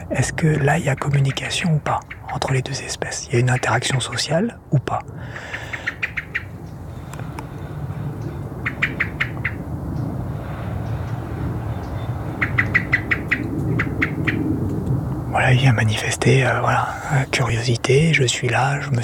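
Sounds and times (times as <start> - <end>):
steady low rumble: 0.0 - 19.0
speech: 0.1 - 5.8, 15.4 - 19.0
European robin alarm ticking call: 0.2 - 7.4, 8.5 - 10.1, 11.8 - 14.4.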